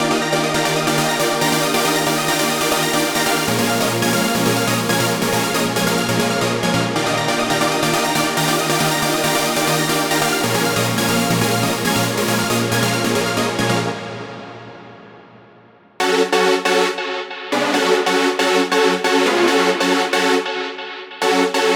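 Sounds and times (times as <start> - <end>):
psytrance music: 0.0 - 21.7.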